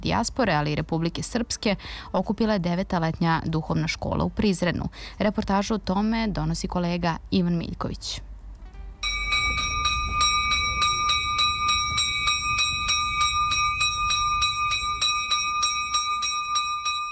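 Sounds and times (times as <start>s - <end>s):
low outdoor rumble: 0.0s - 17.0s
speech: 0.1s - 8.3s
church bell ringing, calling to liturgy: 9.0s - 17.0s.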